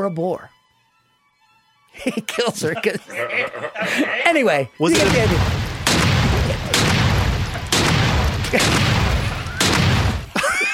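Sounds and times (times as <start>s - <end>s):
speech: 0.0s - 0.6s, 1.9s - 5.6s, 8.5s - 9.0s
laughter: 2.0s - 5.1s, 6.2s - 7.7s, 10.3s - 10.7s
loud booming gunshots with rumbling echo: 4.9s - 10.4s.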